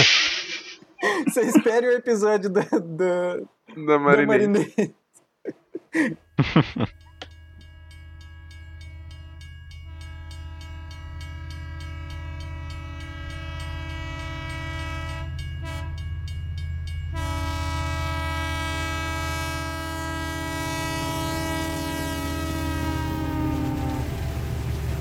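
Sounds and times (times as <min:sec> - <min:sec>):
laughter: 0:00.0 - 0:02.9, 0:04.1 - 0:07.0
speech: 0:01.4 - 0:07.0
train rolling along the tracks: 0:05.9 - 0:24.9
train horn sound effect blaring: 0:07.6 - 0:16.3, 0:17.0 - 0:24.9.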